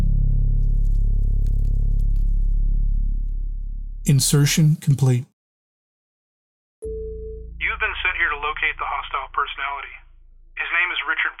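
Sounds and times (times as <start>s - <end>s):
strange low hum with wavering tones: 0.0s - 4.2s, 6.9s - 11.3s
speech: 4.1s - 5.3s
faint crackly radio static: 7.6s - 11.3s.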